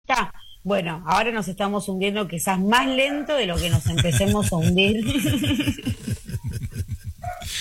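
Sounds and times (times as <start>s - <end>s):
speech: 0.2s - 6.0s
neighbor's dog barking in yaps: 3.0s - 3.4s, 7.2s - 7.5s
laughter: 3.6s - 7.5s.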